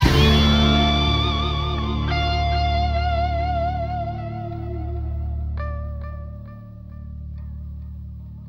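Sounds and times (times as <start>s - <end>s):
guitar squeal: 0.0s - 6.2s.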